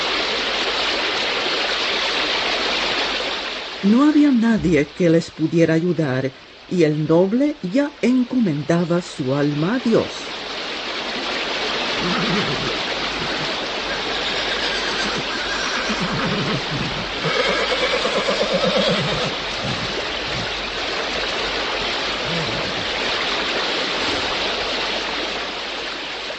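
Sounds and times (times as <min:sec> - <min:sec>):
fast current of the Moldava river roaring: 0:00.0 - 0:26.3
speech: 0:03.8 - 0:10.4
horse whinnying loudly and shakily: 0:12.0 - 0:20.6, 0:22.2 - 0:22.9.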